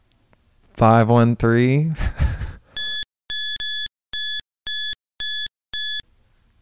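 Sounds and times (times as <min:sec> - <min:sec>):
speech: 0:00.8 - 0:02.1
loud censor bleep tones: 0:02.8 - 0:06.0.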